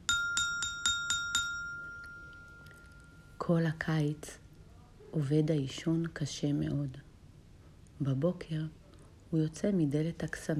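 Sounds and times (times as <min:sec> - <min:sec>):
small bell ringing: 0:00.0 - 0:03.4
speech: 0:03.5 - 0:04.4, 0:05.1 - 0:07.1, 0:08.0 - 0:10.5.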